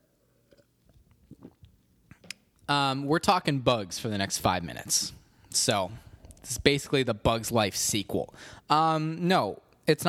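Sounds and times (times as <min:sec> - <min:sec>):
person sipping water: 0:00.4 - 0:02.4
speech: 0:02.7 - 0:10.0.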